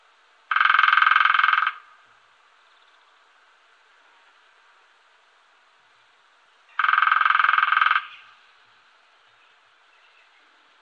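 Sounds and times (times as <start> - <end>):
lesser spotted woodpecker drumming: 0.5 - 2.0, 6.7 - 8.5.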